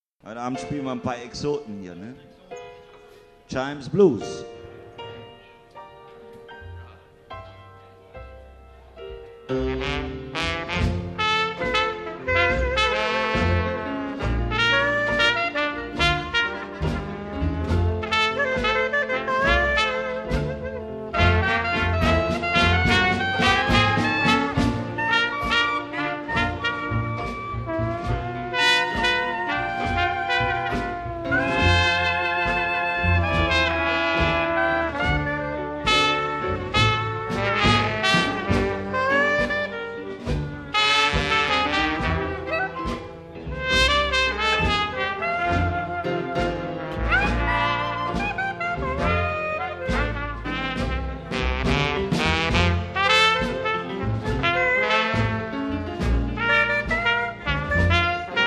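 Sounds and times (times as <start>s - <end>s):
blues music: 0.2s - 58.4s.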